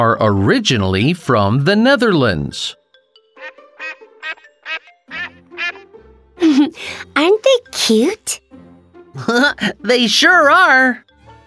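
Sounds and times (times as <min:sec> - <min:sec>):
speech: 0:00.0 - 0:02.8, 0:06.6 - 0:08.4, 0:09.2 - 0:11.0
call duck quacking: 0:03.4 - 0:05.9.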